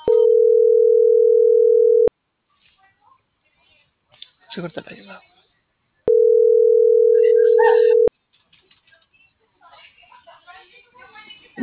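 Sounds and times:
steady telephone tone after a dropped call: 0.0s - 2.1s, 6.1s - 8.1s
speech: 4.6s - 5.3s.

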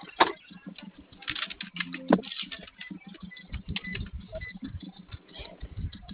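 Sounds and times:
keypad clicks from code entry: 0.3s - 5.1s.

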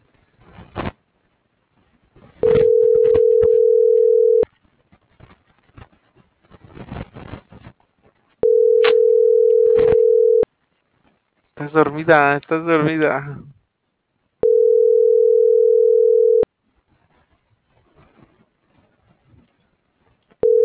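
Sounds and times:
steady telephone tones while dialing an operator: 2.4s - 4.5s, 8.4s - 10.5s, 14.4s - 16.5s, 20.4s - 20.6s
speech: 11.8s - 13.6s.

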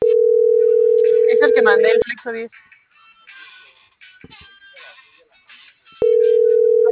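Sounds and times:
unanswered telephone call ringing as a steady electronic tone: 0.0s - 2.0s, 6.0s - 6.9s
speech: 1.6s - 2.8s.

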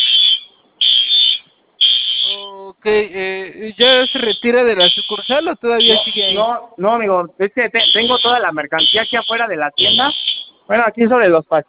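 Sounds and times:
shop alarm blaring in high-pitched electronic tones: 0.0s - 2.6s, 3.8s - 6.6s, 7.7s - 10.7s
speech: 2.8s - 11.6s.

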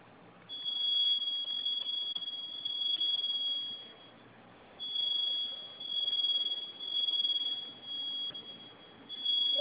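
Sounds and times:
high-pitched fire alarm tone from a security panel, set off as a test: 0.5s - 4.2s, 4.8s - 9.5s.

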